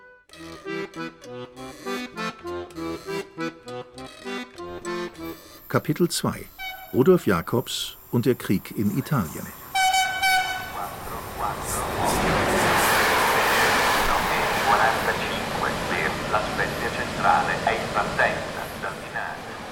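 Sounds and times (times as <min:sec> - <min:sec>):
speech: 0:00.4 - 0:03.1, 0:05.7 - 0:09.6
train horn with stacked harmonic tones: 0:06.6 - 0:07.0, 0:09.7 - 0:10.9
passing train rumbling and rattling along the track: 0:07.9 - 0:19.7.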